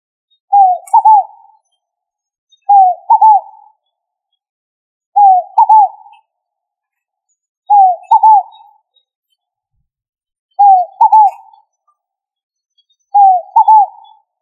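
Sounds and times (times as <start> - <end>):
pigeon cooing: 0.5 - 1.4, 2.7 - 3.6, 5.2 - 6.2, 7.7 - 8.6, 10.6 - 11.6, 13.2 - 14.2.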